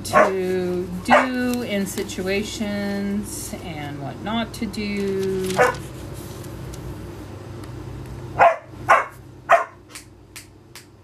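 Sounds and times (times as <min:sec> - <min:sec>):
low steady hum: 0:00.0 - 0:11.0
dog barking: 0:00.1 - 0:00.4, 0:01.1 - 0:01.4, 0:05.6 - 0:05.8, 0:08.4 - 0:09.8
speech: 0:00.1 - 0:05.9.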